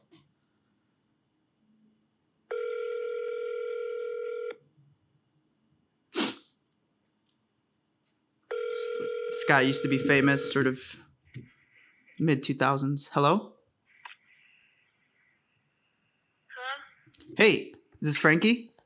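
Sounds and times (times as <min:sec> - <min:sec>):
steady ringback tone from a phone call: 0:02.5 - 0:04.6, 0:08.5 - 0:10.8
speech: 0:09.5 - 0:11.1, 0:12.2 - 0:13.6, 0:17.4 - 0:18.7.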